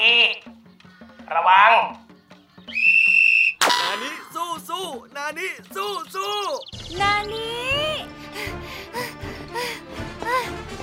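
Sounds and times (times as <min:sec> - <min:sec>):
speech: 0:01.3 - 0:02.0, 0:04.8 - 0:08.7
whistle blast to start a race: 0:02.7 - 0:04.5.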